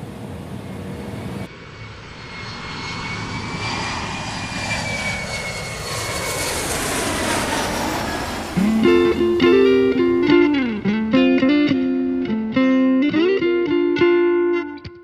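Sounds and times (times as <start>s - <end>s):
faint high whine: 0.0s - 13.0s
airplane engine roar during flight: 0.0s - 14.8s
bright tonal melody: 8.6s - 13.7s.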